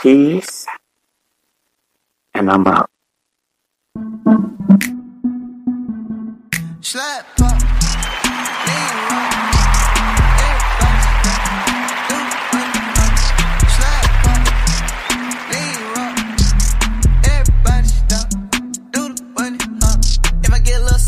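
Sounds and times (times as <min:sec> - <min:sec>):
speech: 0:00.0 - 0:00.8, 0:02.4 - 0:02.9
steady punchy beat: 0:04.0 - 0:06.8, 0:07.4 - 0:21.0
song with deep booming bass: 0:04.0 - 0:08.4, 0:09.0 - 0:21.0
vocals over music: 0:06.6 - 0:21.0.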